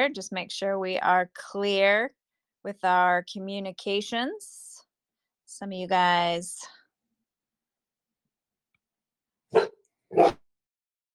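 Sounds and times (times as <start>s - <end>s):
speech: 0.0s - 4.6s, 5.5s - 6.8s, 9.5s - 10.4s
dog on patrol for bobcats barking on a windy day: 9.5s - 10.4s.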